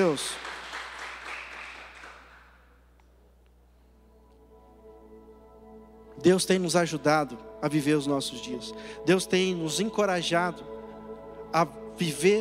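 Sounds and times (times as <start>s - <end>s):
speech: 0.0s - 0.5s, 6.2s - 10.8s, 11.5s - 12.4s
audience applauding: 0.0s - 2.6s
soft sustained keyboard chords: 3.2s - 12.4s.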